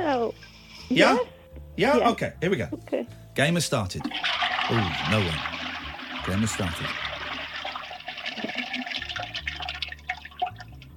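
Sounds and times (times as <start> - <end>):
speech: 0.9 - 5.5, 6.3 - 7.0
toilet flushing and tank refilling: 4.0 - 10.9.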